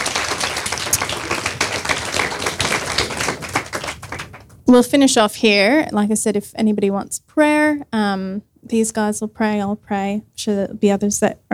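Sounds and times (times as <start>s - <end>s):
audience clapping after a closing prayer: 0.0s - 4.7s
speech: 4.7s - 11.5s.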